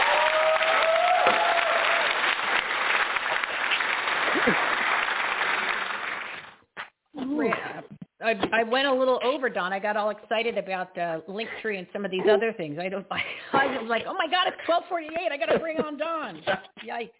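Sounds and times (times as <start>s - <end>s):
audience applause: 0.0s - 6.6s
speech: 8.3s - 17.1s.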